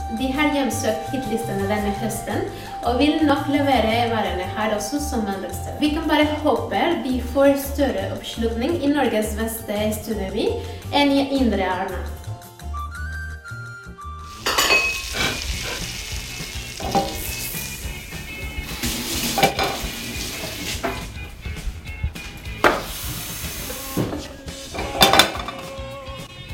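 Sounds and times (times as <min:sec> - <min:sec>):
speech: 0:00.2 - 0:12.2
utensils stirring, scraping and clinking against the pan: 0:14.3 - 0:17.7, 0:19.0 - 0:21.1, 0:24.1 - 0:25.7
food sizzling in a hot pan: 0:14.3 - 0:21.3, 0:22.6 - 0:25.1.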